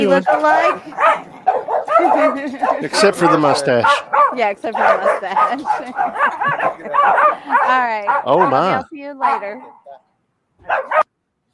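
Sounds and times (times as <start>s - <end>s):
speech: 0.0s - 1.3s, 2.0s - 9.8s, 10.6s - 11.1s
laughter: 0.0s - 8.8s
dog barking sharply: 0.0s - 10.0s, 10.6s - 11.1s.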